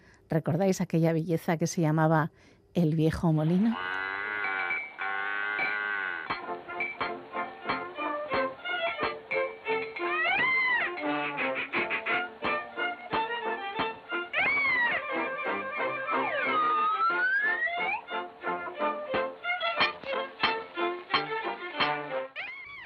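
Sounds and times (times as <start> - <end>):
speech: 0.3 - 4.0
bouncy old-time melody from a 1928 animated cartoon short: 4.4 - 22.4.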